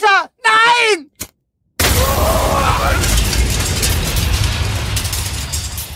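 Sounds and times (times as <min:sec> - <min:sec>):
huge explosion: 0:01.8 - 0:05.9
loud deep rumble with scattered crackling: 0:01.9 - 0:05.9.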